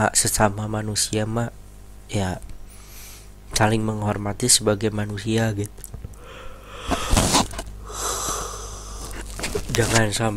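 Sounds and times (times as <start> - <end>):
speech: 0.0 - 2.5, 3.5 - 5.9, 9.8 - 10.3
person yawning with breathy exhale: 6.2 - 9.2.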